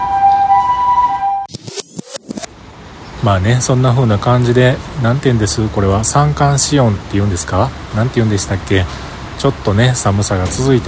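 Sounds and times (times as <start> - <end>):
ambulance siren passing outside at night: 0.0 - 1.5
speech: 3.2 - 10.8.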